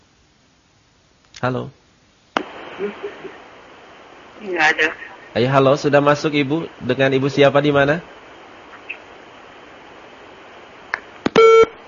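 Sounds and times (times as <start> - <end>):
speech: 1.4 - 1.8, 2.8 - 3.4, 4.4 - 8.1
short loud electronic telephone disconnect tone: 11.3 - 11.8.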